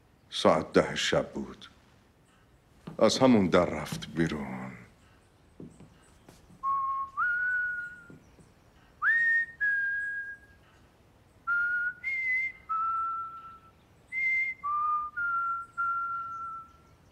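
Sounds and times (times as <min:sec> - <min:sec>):
speech: 0:00.3 - 0:01.7, 0:03.0 - 0:04.8
person whistling a carefree tune: 0:06.6 - 0:08.1, 0:09.0 - 0:10.6, 0:11.5 - 0:16.8.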